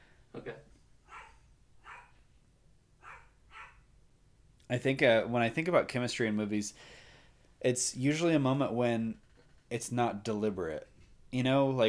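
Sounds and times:
faint noise: 0.0 - 11.8
dog barking: 1.1 - 2.2, 3.0 - 3.9
speech: 4.7 - 7.0, 7.6 - 11.8.

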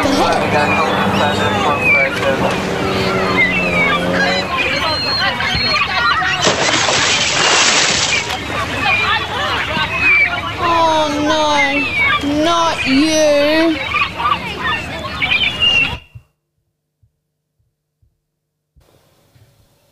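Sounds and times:
jet ski engine buzzing over the water at a beach: 0.0 - 9.6
wind and water noise at a beach: 0.0 - 15.9
crowd of people chattering at a beach: 0.0 - 16.0
speech: 0.5 - 0.8.

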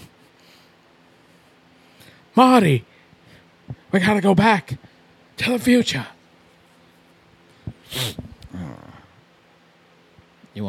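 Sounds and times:
speech: 2.4 - 3.0, 3.9 - 6.2
sharp nasal sniffle: 7.8 - 8.4.

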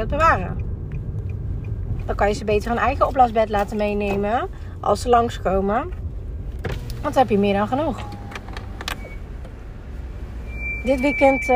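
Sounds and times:
speech: 0.0 - 0.7, 2.1 - 6.0, 6.6 - 8.2, 10.8 - 11.5
low rumble of a slow-moving car: 0.0 - 11.5
car brakes squeaking while parking: 7.8 - 9.6, 10.2 - 11.5.

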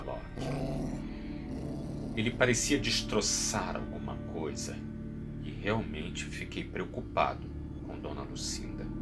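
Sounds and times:
dog growling: 0.0 - 3.2
speech: 2.2 - 4.9, 5.6 - 8.9.

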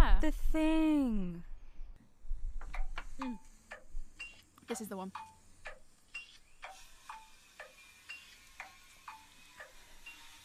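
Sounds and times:
speech: 0.2 - 1.5, 4.7 - 5.3
clock ticking: 2.7 - 10.4.

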